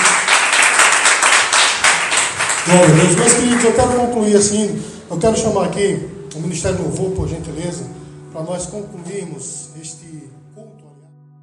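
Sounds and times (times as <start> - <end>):
audience applauding at a church service: 0.0 - 4.2
speech: 2.6 - 10.7.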